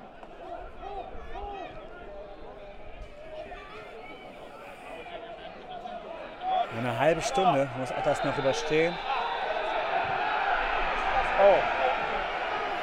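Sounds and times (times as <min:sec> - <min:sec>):
football fans chanting in stadium stands: 0:06.2 - 0:12.8
speech: 0:06.8 - 0:09.1, 0:11.4 - 0:11.8.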